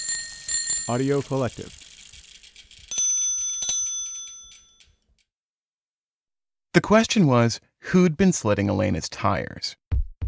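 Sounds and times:
small bicycle bell ringing: 0.0 - 5.0
speech: 0.9 - 1.8, 6.8 - 9.8.

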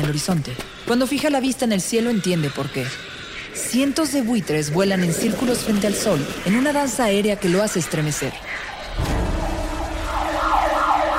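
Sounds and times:
speech: 0.1 - 3.1, 3.7 - 8.7
police car siren wailing: 8.7 - 11.1.

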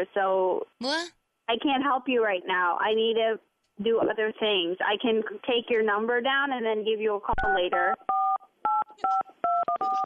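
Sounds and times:
speech: 0.0 - 8.1
telephone keypad dialing tones: 7.5 - 10.0.

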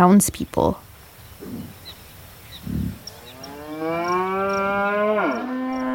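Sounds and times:
speech: 0.0 - 0.8
faint bird chirps: 0.0 - 5.9
soft low thuds: 0.8 - 4.4
cow mooing: 2.6 - 5.9.

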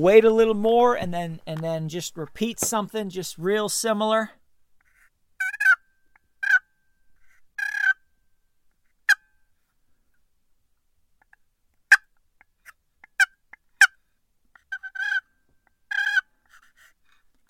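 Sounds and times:
speech: 0.0 - 4.4
soft turkey clucks made on a call: 5.4 - 5.8, 6.4 - 6.6, 7.6 - 8.0, 15.9 - 16.2.

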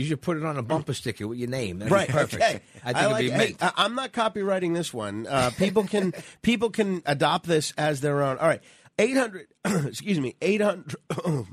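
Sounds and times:
speech: 0.0 - 11.5
man clearing his throat: 9.6 - 10.0, 10.9 - 11.5.

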